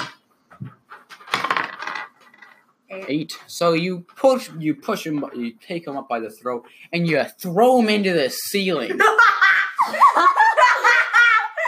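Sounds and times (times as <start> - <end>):
dice rolling on a hard tabletop: 1.2 - 2.6
speech: 2.9 - 10.3
laughter: 8.9 - 11.6.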